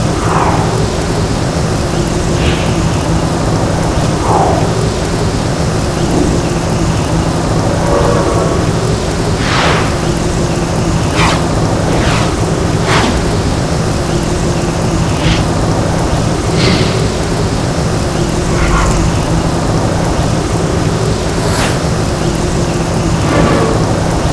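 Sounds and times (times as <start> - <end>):
tram heard from outside: 0.0 - 24.3.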